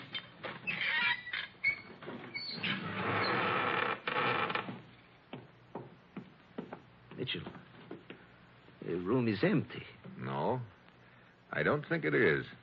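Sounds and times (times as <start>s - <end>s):
secret door creaking open with a grinding squeaky groan: 0.0s - 4.9s
speech: 7.3s - 7.6s, 8.9s - 10.7s, 11.6s - 12.6s.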